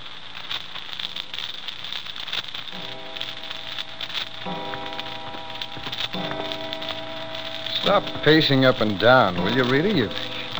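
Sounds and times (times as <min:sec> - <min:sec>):
soft hiss: 0:00.0 - 0:10.5
clock striking six: 0:02.7 - 0:10.5
speech: 0:07.9 - 0:10.4.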